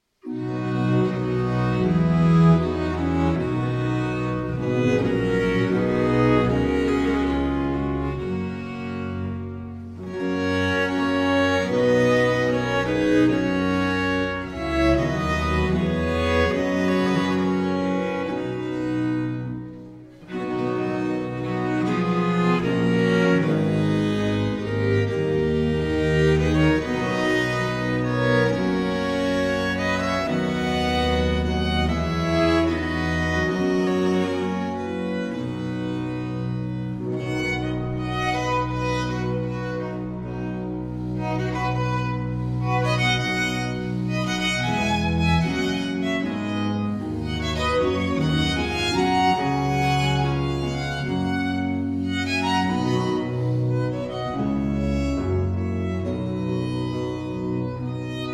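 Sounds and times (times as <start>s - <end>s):
classical sonata in C major: 0.0s - 58.3s.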